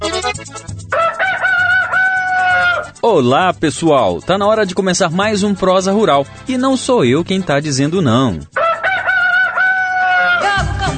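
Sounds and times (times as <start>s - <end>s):
rooster crowing: 0.9s - 3.0s, 8.6s - 10.7s
speech: 3.1s - 8.6s.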